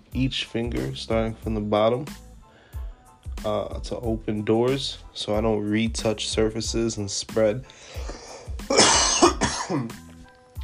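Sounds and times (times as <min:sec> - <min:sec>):
speech: 0:00.2 - 0:02.2, 0:03.4 - 0:08.2, 0:09.7 - 0:10.1
person coughing with harsh raspy bursts: 0:08.6 - 0:10.0
throat clearing: 0:08.7 - 0:10.0.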